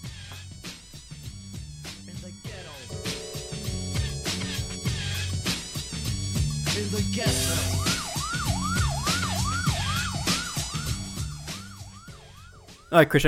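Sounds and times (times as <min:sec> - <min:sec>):
busy song with dense instrumental backing: 0:02.0 - 0:13.0
speech: 0:07.0 - 0:07.8, 0:12.9 - 0:13.2
wailing siren in a song: 0:07.2 - 0:12.9.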